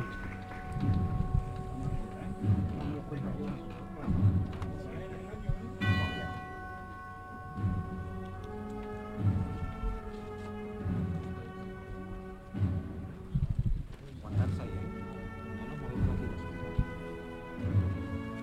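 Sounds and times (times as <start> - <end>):
bell ringing with long resonant tones: 0.0 - 4.3, 5.7 - 9.4
people talking: 0.0 - 6.6, 9.2 - 12.0, 13.9 - 16.8
crowd murmuring: 0.0 - 18.4.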